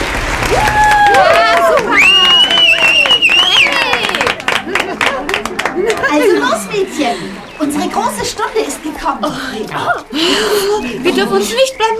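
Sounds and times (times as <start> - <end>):
crowd applauding: 0.0 - 10.7
voices whooping and cheering: 0.0 - 11.8
laughter: 1.2 - 11.9
speech: 8.3 - 11.9.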